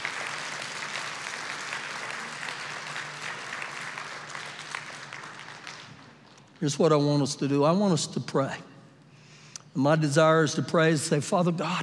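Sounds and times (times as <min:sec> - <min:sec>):
audience applauding: 0:00.0 - 0:06.4
speech: 0:06.6 - 0:08.7, 0:09.8 - 0:11.8.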